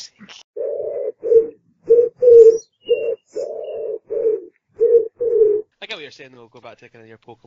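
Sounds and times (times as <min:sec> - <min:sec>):
pigeon cooing: 0:00.6 - 0:05.7
speech: 0:06.2 - 0:07.4.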